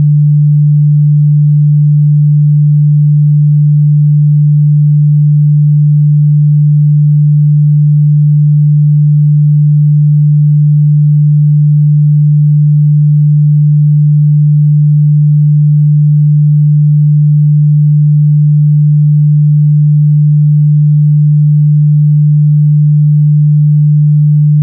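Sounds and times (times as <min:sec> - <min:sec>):
sine tone: 0:00.0 - 0:24.6.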